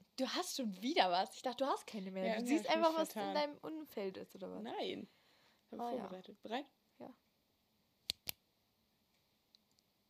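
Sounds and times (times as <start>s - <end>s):
speech: 0.2s - 7.2s
ballpoint pen clicking: 8.0s - 8.4s.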